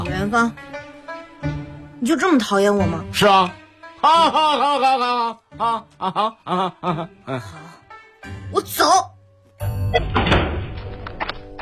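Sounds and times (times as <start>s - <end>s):
speech: 0.2s - 0.7s, 1.4s - 10.1s
laughter: 4.0s - 7.8s
door slamming shut: 9.9s - 11.0s
door rattling: 10.0s - 11.1s.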